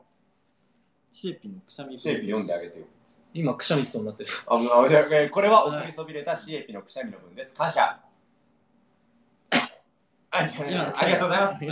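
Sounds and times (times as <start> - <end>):
speech: 1.2 - 8.1, 10.3 - 11.7
person coughing: 9.5 - 9.9.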